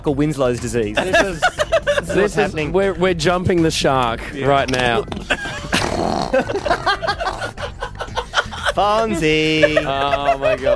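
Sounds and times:
speech: 0.0s - 7.3s, 8.8s - 10.7s
people chuckling and snickering: 1.0s - 2.7s, 4.8s - 10.7s
fart sound effect: 5.0s - 6.6s.

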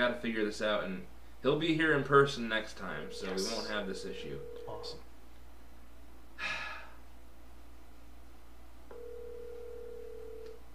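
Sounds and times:
speech: 0.0s - 5.1s
telephone ringing tone of an outgoing phone call: 4.0s - 5.0s, 8.9s - 10.6s
breathy exhale: 6.4s - 7.0s.

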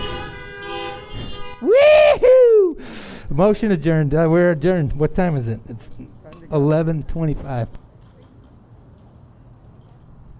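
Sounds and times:
several car horns honking together: 0.0s - 1.7s
speech: 3.4s - 7.8s.

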